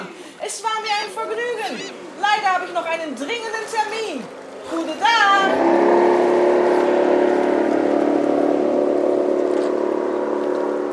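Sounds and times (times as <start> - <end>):
speech: 0.5 - 6.0
motorboat engine revving as the boat speeds off: 4.2 - 10.9.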